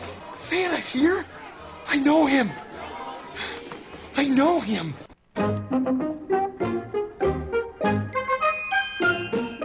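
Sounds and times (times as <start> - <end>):
speech: 0.5 - 2.6, 4.2 - 6.2
bright upbeat musical passage with tuned notes: 5.4 - 9.6
sleigh bells jingling: 7.9 - 9.6.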